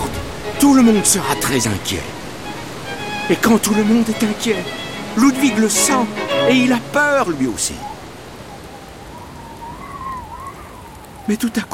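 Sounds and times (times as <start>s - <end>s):
steady dense rain falling: 0.0s - 11.7s
speech: 0.6s - 2.2s, 3.3s - 8.0s, 11.3s - 11.7s
thin faint wavering whistling tone: 7.8s - 11.3s.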